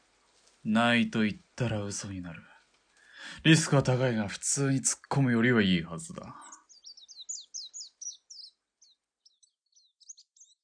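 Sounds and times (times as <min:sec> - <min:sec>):
speech: 0:00.6 - 0:02.5, 0:03.2 - 0:06.5
sparrows chirping at dawn: 0:05.2 - 0:10.6.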